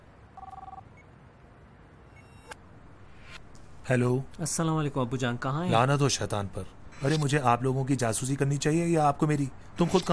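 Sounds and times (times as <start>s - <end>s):
hiss: 0.0s - 10.1s
telephone ringing with a short warbling electronic trill: 0.4s - 1.0s
speech: 3.9s - 10.1s.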